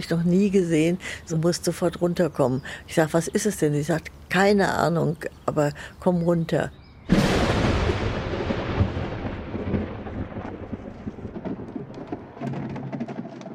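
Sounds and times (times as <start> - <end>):
speech: 0.0 - 6.8
thunder over Sanahin: 7.1 - 12.9
heavy rain pouring over the walls of an ancient monastery in Sanahin: 7.1 - 13.3.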